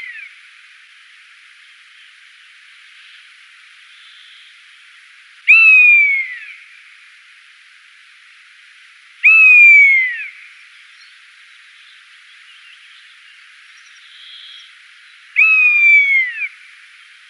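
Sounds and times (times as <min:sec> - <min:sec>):
rough-legged buzzard calling: 0:05.5 - 0:06.4, 0:09.2 - 0:10.3, 0:15.4 - 0:16.5.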